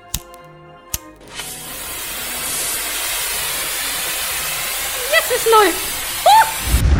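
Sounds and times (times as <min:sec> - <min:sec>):
simple lighter clicking: 0:00.0 - 0:01.8
lighter flame hissing as it burns through a layer of material: 0:00.1 - 0:06.8
speech: 0:05.3 - 0:05.9.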